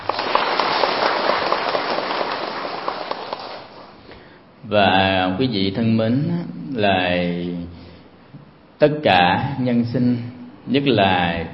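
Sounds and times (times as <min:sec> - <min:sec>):
crowd clapping: 0:00.0 - 0:04.0
speech: 0:04.7 - 0:07.7, 0:08.8 - 0:11.5.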